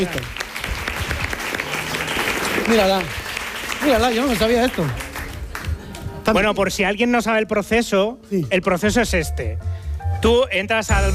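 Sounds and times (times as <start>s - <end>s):
speech: 0.0s - 0.4s, 2.7s - 3.2s, 3.8s - 5.0s, 6.3s - 11.1s
audience applauding: 0.0s - 6.4s.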